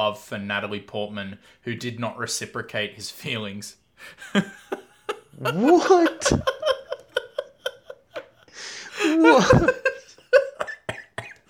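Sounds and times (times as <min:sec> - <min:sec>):
speech: 0:00.0 - 0:04.8, 0:05.4 - 0:06.5, 0:09.2 - 0:09.8
person laughing: 0:04.2 - 0:11.4.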